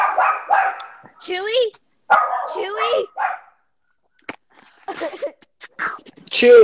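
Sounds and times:
dog barking and yipping in short bursts: 0:00.0 - 0:01.1, 0:02.1 - 0:03.6
speech: 0:01.3 - 0:03.4, 0:04.9 - 0:06.6.

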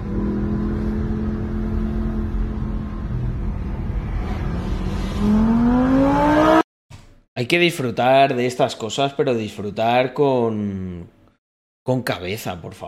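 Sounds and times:
sports car engine revving and accelerating: 0:00.0 - 0:06.6
speech: 0:07.4 - 0:11.2, 0:11.9 - 0:12.8.

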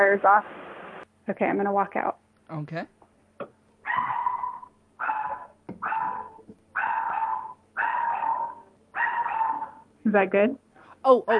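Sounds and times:
speech: 0:00.0 - 0:00.6, 0:01.3 - 0:04.2, 0:10.0 - 0:11.3
small dog barking in high-pitched yaps: 0:03.9 - 0:09.8.

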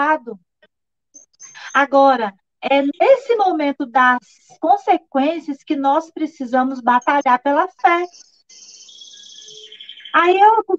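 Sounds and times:
speech: 0:00.0 - 0:00.5, 0:01.8 - 0:08.8, 0:10.1 - 0:10.7
small bird singing a shrill continuous trill: 0:07.8 - 0:10.4.

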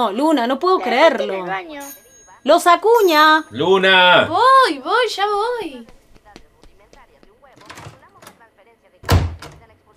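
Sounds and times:
speech: 0:00.0 - 0:06.0
door slamming shut: 0:09.0 - 0:09.6.

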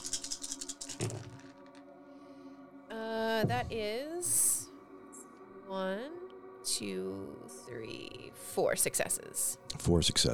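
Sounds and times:
handful of dice rolled for a game clattering: 0:00.0 - 0:01.8
speech: 0:03.4 - 0:04.3, 0:05.7 - 0:06.2, 0:06.8 - 0:10.3.

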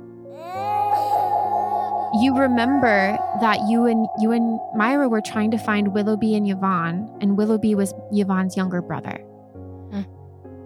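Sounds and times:
child crying into a drawn-out wail: 0:00.4 - 0:03.7
low steady droning tone: 0:00.6 - 0:08.6
speech: 0:02.2 - 0:09.3, 0:09.9 - 0:10.2.

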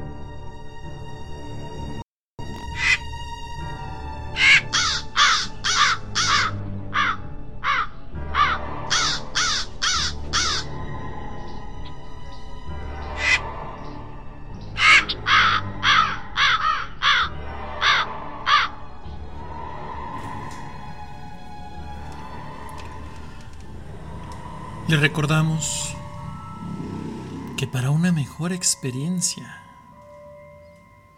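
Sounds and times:
crow cawing harshly: 0:02.7 - 0:03.1, 0:04.3 - 0:10.8, 0:13.1 - 0:13.5, 0:14.8 - 0:18.8
speech: 0:24.9 - 0:25.8, 0:27.7 - 0:29.7.

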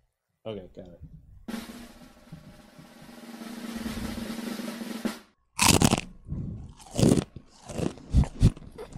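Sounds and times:
chewing and crunching chips: 0:05.6 - 0:06.1, 0:06.7 - 0:08.7.

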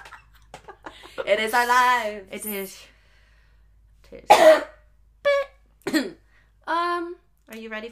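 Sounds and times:
speech: 0:01.3 - 0:02.9, 0:04.1 - 0:04.7, 0:06.7 - 0:07.9
loud cough: 0:04.3 - 0:04.8, 0:05.8 - 0:06.2.

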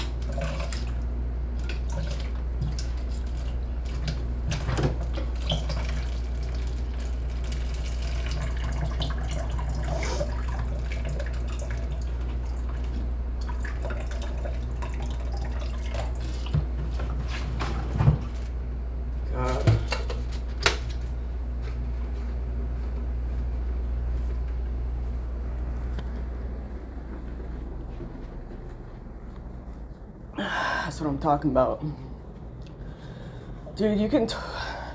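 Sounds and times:
low hum: 0:00.0 - 0:34.9
clean drinking water pouring into a cup: 0:05.1 - 0:16.4
speech: 0:31.2 - 0:32.0, 0:33.8 - 0:34.5.

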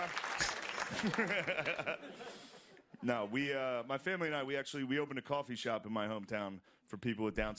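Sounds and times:
audience applause: 0:00.0 - 0:02.1
people chuckling: 0:00.8 - 0:03.4
speech: 0:00.9 - 0:07.5.

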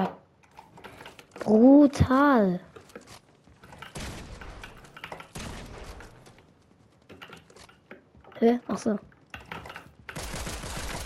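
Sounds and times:
speech: 0:01.5 - 0:02.7, 0:08.4 - 0:09.1
video game pistol gunshots: 0:03.7 - 0:06.4, 0:09.8 - 0:11.0.

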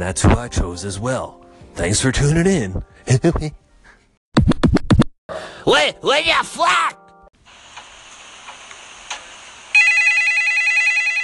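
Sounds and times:
speech: 0:00.0 - 0:03.6, 0:05.6 - 0:07.0
telephone ringing with bright electronic warbling tone: 0:09.8 - 0:11.2.

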